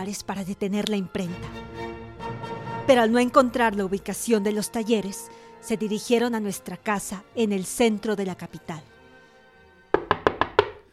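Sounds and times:
speech: 0.0 - 1.9, 2.9 - 8.9
knocking on the wooden door of a house in the centre of the capital: 9.9 - 10.9.

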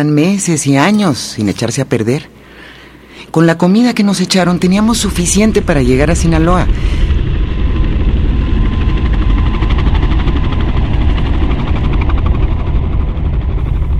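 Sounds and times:
speech: 0.0 - 2.4, 3.3 - 7.1
helicopters flying overhead with rotors thumping: 4.6 - 13.9.

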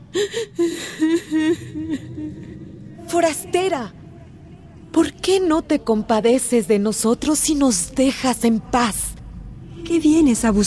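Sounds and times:
woman sobbing: 0.0 - 2.7
speech: 0.2 - 4.0, 4.9 - 9.2, 9.9 - 10.6.

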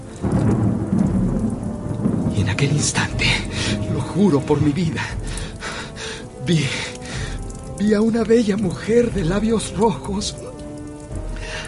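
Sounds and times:
loud rolling thunderclap: 0.0 - 5.9
steady downpour of rain: 0.0 - 11.6
speech: 2.4 - 5.3, 6.4 - 6.9, 7.8 - 10.5.

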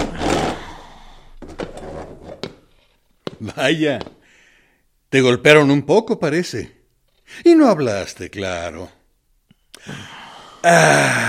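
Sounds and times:
wooden chair scraping and dragging across the floor: 1.4 - 3.4
speech: 3.4 - 4.2, 5.1 - 9.0, 9.8 - 11.2.

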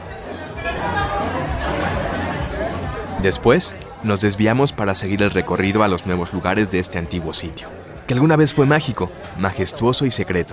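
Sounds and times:
distant crowd murmur from a bar: 0.0 - 10.5
speech: 3.2 - 10.5.

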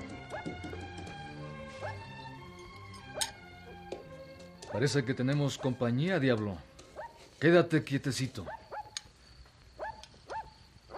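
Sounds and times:
chestnut horse hooves walking calmly with rider at night in the countryside: 0.0 - 7.4
speech: 4.7 - 6.7, 7.4 - 8.6.

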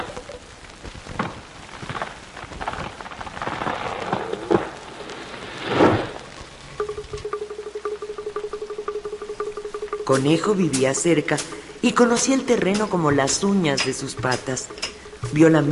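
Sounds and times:
rain falling: 0.0 - 15.7
low steady hum: 6.3 - 15.7
speech: 10.1 - 15.7.

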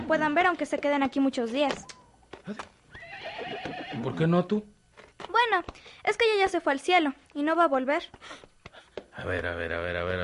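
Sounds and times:
speech: 0.1 - 2.8, 3.9 - 8.5, 9.2 - 10.2
horse whinnying: 2.5 - 4.2.

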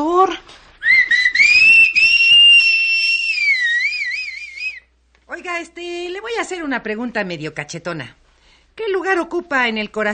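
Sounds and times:
speech: 0.0 - 0.6, 6.5 - 8.2, 8.8 - 10.1
person whistling a sustained tone into someone's ears: 0.8 - 4.9.

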